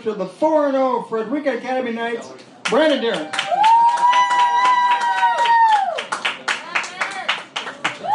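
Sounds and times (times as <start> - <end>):
speech: 0.0 - 3.6
crowd applauding: 2.7 - 8.1
long cheering whoop: 3.2 - 6.1, 8.0 - 8.1.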